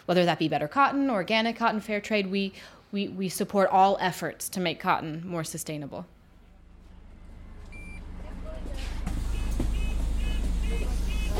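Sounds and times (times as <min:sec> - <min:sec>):
speech: 0:00.1 - 0:06.2
hybrid electric bus engine rumble in London streets: 0:06.2 - 0:11.3
electronic beeps chiming inside a hybrid electric bus: 0:07.7 - 0:08.1, 0:09.3 - 0:11.3.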